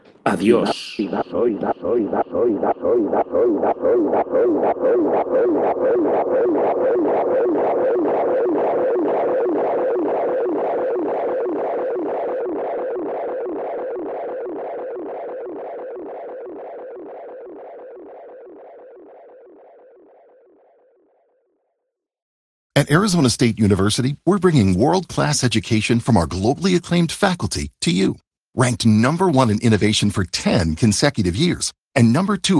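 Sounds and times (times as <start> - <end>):
experimental sound piece of distorted pulses: 0.0 - 20.6
speech: 0.3 - 9.0, 22.8 - 32.5.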